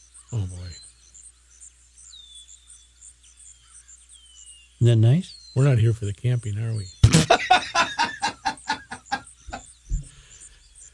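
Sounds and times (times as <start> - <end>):
birds singing outdoors: 0.0 - 10.9
insects chirring: 0.0 - 10.9
speech: 0.3 - 0.9, 4.8 - 7.0
laughter: 7.0 - 9.6.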